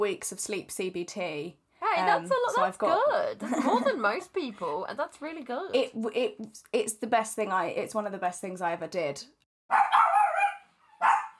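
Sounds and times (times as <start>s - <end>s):
speech: 0.0s - 9.9s
dog barking loudly: 9.7s - 11.3s.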